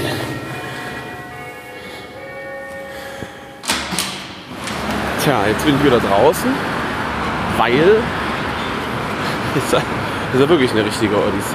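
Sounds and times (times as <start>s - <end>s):
doorbell ringing: 0.0s - 6.7s
sharp clunk: 3.6s - 5.1s
speech: 5.3s - 6.7s, 7.6s - 8.2s, 9.5s - 11.5s
laughter: 8.8s - 11.0s.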